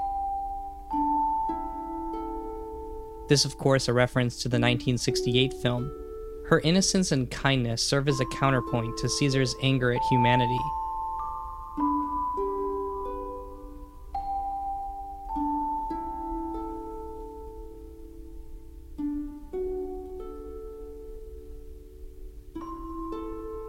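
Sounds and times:
ringing bell tones: 0.0 - 17.9
soft harp plucks: 0.0 - 23.6
gentle orchestral music: 3.2 - 10.8
speech: 3.3 - 10.8.

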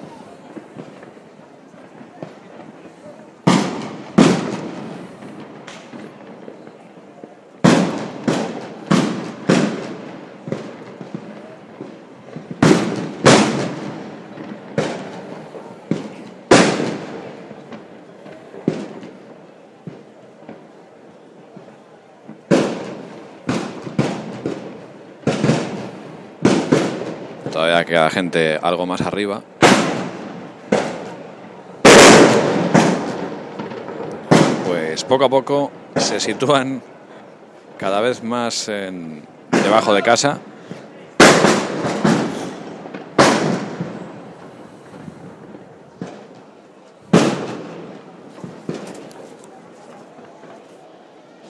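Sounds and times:
steady murmur of noise: 0.0 - 51.4
gunshots in the street: 3.4 - 6.5, 7.6 - 17.5, 22.5 - 27.8, 29.6 - 31.2, 31.8 - 35.1, 39.5 - 40.2, 41.2 - 44.1, 47.1 - 49.1
speech: 27.7 - 29.5, 35.1 - 36.9, 37.8 - 40.5.

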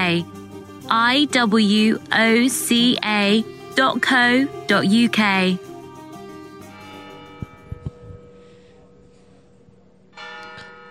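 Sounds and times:
speech: 0.1 - 5.7
large bell tolling: 6.6 - 9.5, 10.1 - 10.8.

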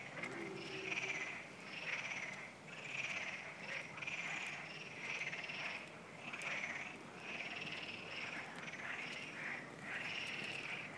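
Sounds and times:
chorus of frogs croaking at night: 0.0 - 10.9.

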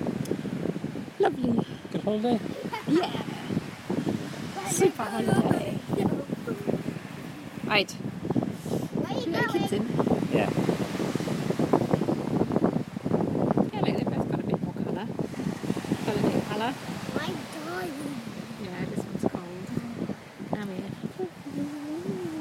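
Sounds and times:
ocean waves on the shore: 0.0 - 22.3
steady wind along a shoreline: 0.0 - 22.3
speech: 1.5 - 3.3, 4.7 - 5.9, 7.7 - 8.0, 9.2 - 10.8
several voices chattering: 2.4 - 8.1, 9.0 - 10.5, 16.1 - 22.3.

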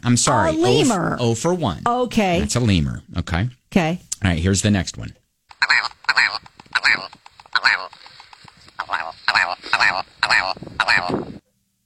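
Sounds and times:
speech: 0.0 - 5.2
willow ptarmigan calling with harsh nasal croaking notes: 5.6 - 8.1, 8.8 - 11.4.

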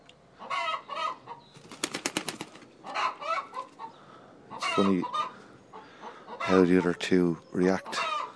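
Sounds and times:
hen cackling while laying an egg: 0.4 - 1.5, 2.8 - 8.3
rapid fluttering like flapping wings: 1.6 - 2.8
speech: 4.8 - 5.2, 6.5 - 8.0.

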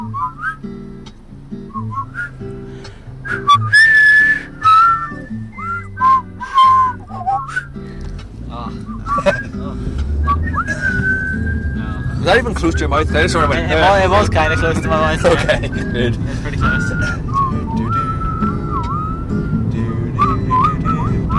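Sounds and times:
person attempting to whistle: 0.0 - 0.7, 1.7 - 7.8, 8.8 - 13.2, 14.4 - 21.3
low voices murmuring and chuckling: 6.7 - 18.0
speech: 12.3 - 16.6.

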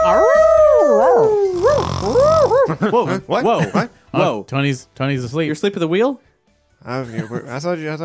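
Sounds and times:
person imitating a confused dog howling: 0.0 - 2.7
speech: 2.8 - 8.0.

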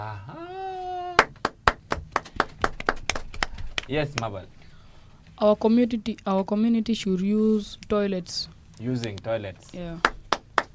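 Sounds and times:
group clapping in unison: 1.1 - 4.4, 9.9 - 10.7
speech: 3.9 - 4.6, 5.4 - 10.1.

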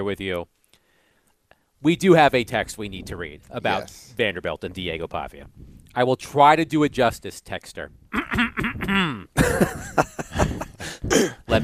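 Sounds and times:
speech: 0.0 - 0.6, 1.8 - 11.6
man clearing his throat: 8.1 - 9.7, 10.8 - 11.6
laughter: 9.4 - 11.0.

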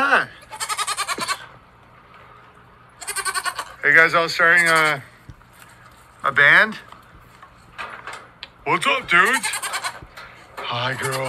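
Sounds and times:
goat bleating at nightly milking time: 0.4 - 1.5, 3.0 - 5.1, 8.9 - 11.2
speech: 3.8 - 5.1, 6.3 - 6.9, 8.7 - 9.5, 10.7 - 11.2.

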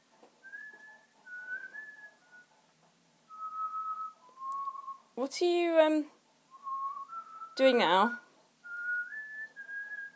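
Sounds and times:
person whistling a tune: 0.4 - 2.5, 3.3 - 5.0, 6.5 - 7.6, 8.6 - 10.1
speech: 5.2 - 6.2, 7.6 - 8.2.

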